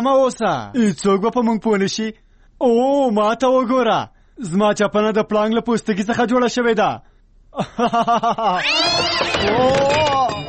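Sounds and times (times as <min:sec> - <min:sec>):
speech: 0:00.0 - 0:10.0
laughter: 0:07.6 - 0:10.4
cat lying on the ground meowing after being stepped on: 0:08.6 - 0:10.4.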